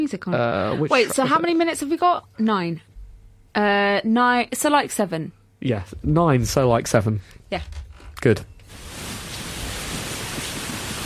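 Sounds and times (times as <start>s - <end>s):
speech: 0.1s - 2.9s, 3.6s - 8.8s
rain-like broadband hiss: 8.6s - 11.0s.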